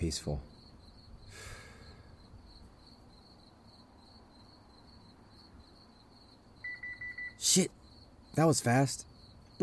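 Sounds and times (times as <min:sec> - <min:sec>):
speech: 0:00.0 - 0:00.5, 0:07.4 - 0:07.8, 0:08.4 - 0:09.6
crickets chirping at night: 0:00.0 - 0:09.6
breathy puff: 0:01.3 - 0:02.2.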